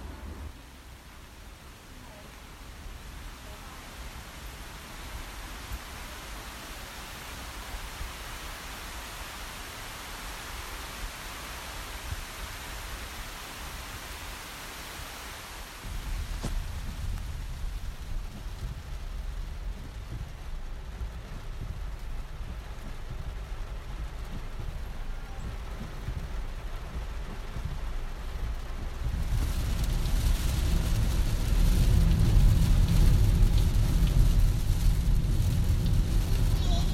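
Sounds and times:
steady rain outside at night: 0.0 - 36.9
low rumble under the downpour: 15.8 - 36.9.

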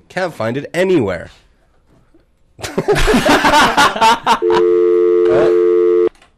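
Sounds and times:
speech: 0.1 - 1.4, 2.6 - 5.6
laughter: 2.6 - 4.6
telephone busy tone after hanging up: 4.4 - 6.1.

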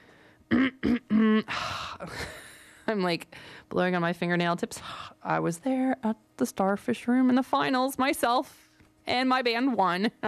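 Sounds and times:
throat clearing with voiced grunting bursts and rough breathy rasp: 0.5 - 1.5
speech: 2.9 - 10.2.

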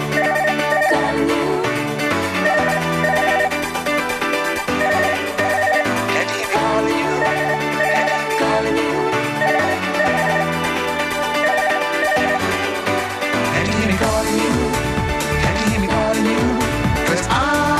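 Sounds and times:
telephone-style ring: 0.2 - 1.2, 2.4 - 3.7, 4.6 - 8.4, 9.4 - 12.8
band playing a song: 2.2 - 17.7.

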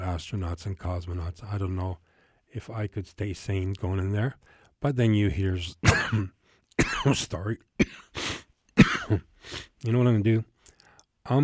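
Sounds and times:
speech: 0.1 - 8.4, 9.1 - 10.5, 11.2 - 11.4
person coughing: 5.8 - 7.2, 7.8 - 8.2, 8.8 - 9.3.

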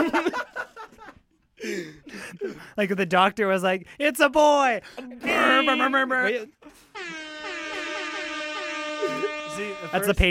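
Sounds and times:
laughter: 0.0 - 2.5, 4.8 - 6.8, 7.4 - 9.9
speech: 1.7 - 7.2, 9.0 - 10.2
air horn blasts: 5.2 - 10.2.

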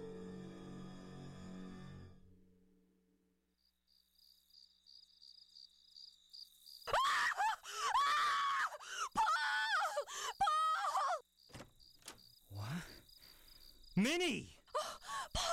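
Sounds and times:
insect-like chirping hum: 3.5 - 15.5
woman screaming in terror: 6.9 - 11.2.

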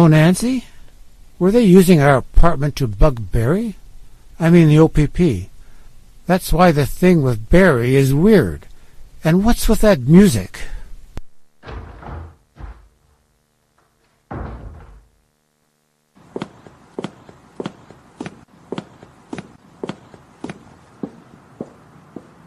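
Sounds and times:
speech: 0.0 - 0.7, 1.4 - 3.8, 4.4 - 5.5, 6.3 - 10.7
heavy thuds: 11.6 - 15.3
footsteps of a woman clicking down a hallway: 16.2 - 22.4.

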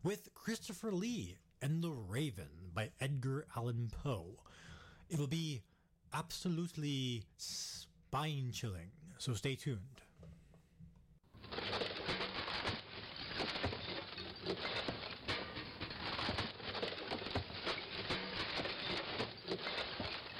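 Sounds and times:
speech: 0.0 - 10.4, 14.5 - 14.8
compost and recyclables dumped into a garbage bin clattering: 11.4 - 20.3.

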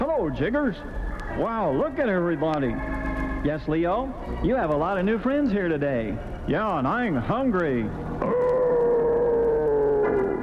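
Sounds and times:
speech: 0.2 - 8.3
voice imitating an animal growl: 8.2 - 10.4.

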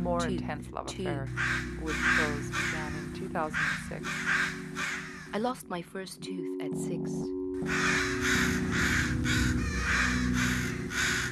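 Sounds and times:
speech: 0.0 - 8.6
crows cawing: 1.3 - 5.4, 7.6 - 11.3.

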